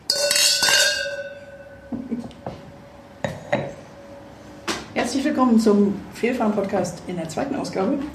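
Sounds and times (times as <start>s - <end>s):
red wine glasses clinking in a toast: 0.0s - 2.2s
speech: 5.1s - 8.1s.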